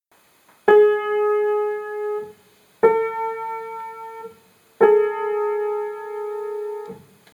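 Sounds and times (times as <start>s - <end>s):
piano: 0.6s - 7.3s.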